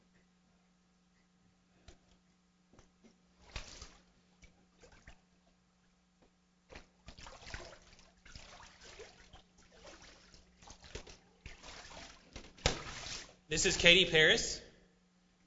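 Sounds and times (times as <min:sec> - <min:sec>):
faint steady hum: 0:00.0 - 0:15.4
water sloshing and splashing as people wade in: 0:03.4 - 0:05.6, 0:06.7 - 0:13.5
speech: 0:13.5 - 0:14.6.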